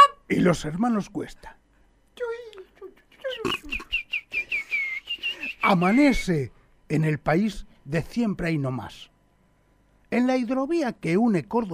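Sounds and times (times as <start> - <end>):
speech: 0.3 - 1.6, 5.7 - 9.1, 10.1 - 11.7
parrots chattering: 3.1 - 6.0.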